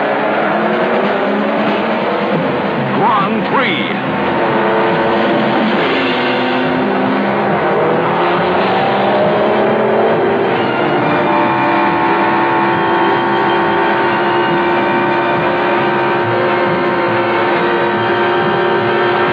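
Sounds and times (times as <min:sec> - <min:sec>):
Formula One racing car engines roaring: 0:00.0 - 0:19.3.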